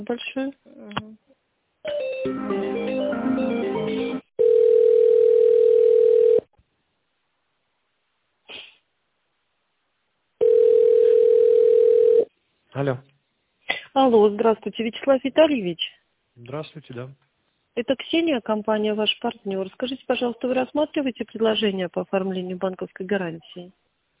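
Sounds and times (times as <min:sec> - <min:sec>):
speech: 0:00.0 - 0:01.1, 0:02.2 - 0:03.6, 0:12.8 - 0:13.1, 0:14.0 - 0:17.2, 0:17.8 - 0:23.8
telephone ringing tone while an office call is transferred: 0:01.9 - 0:06.5, 0:10.4 - 0:12.3.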